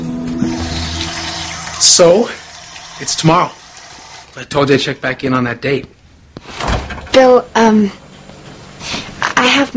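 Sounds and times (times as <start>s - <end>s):
water running from a tap: 0.4s - 4.5s
speech: 1.8s - 2.4s, 3.0s - 3.6s, 4.3s - 6.0s, 7.1s - 8.0s, 9.5s - 9.7s.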